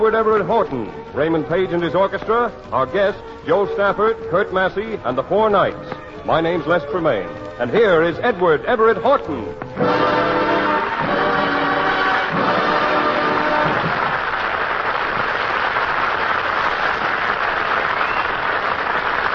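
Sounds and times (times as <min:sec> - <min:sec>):
speech: 0:00.0 - 0:10.2
studio audience applauding: 0:09.8 - 0:19.3.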